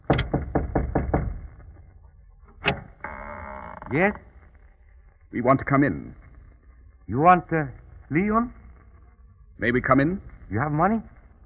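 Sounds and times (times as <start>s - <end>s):
sharp knocks on a wooden door: 0.0s - 1.6s
speech: 3.9s - 4.3s, 5.3s - 6.2s, 7.1s - 8.6s, 9.6s - 11.1s.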